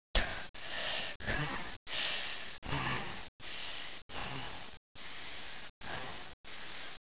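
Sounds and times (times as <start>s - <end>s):
woman breathing fast: 0.2s - 7.0s.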